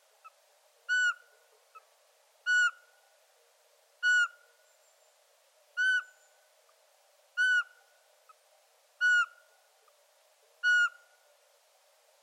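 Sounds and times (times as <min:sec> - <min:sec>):
Eurasian pygmy owl calling with piping whistles: 0:00.9 - 0:01.3, 0:02.5 - 0:02.8, 0:04.0 - 0:04.4, 0:05.8 - 0:06.2, 0:07.4 - 0:07.8, 0:09.0 - 0:09.4, 0:10.6 - 0:11.0.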